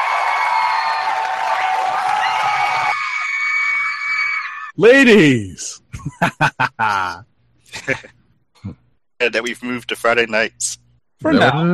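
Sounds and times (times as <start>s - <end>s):
loud crowd cheering and screaming: 0.0s - 4.7s
speech: 4.8s - 11.7s
laughter: 5.9s - 8.2s.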